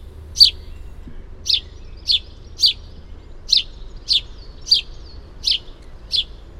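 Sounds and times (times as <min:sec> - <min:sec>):
faint low noise: 0:00.0 - 0:06.5
house sparrow chirping: 0:00.0 - 0:06.5.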